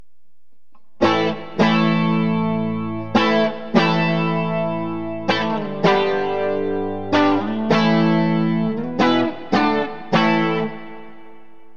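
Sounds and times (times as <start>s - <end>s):
distorted guitar clips: 0.7s - 11.7s.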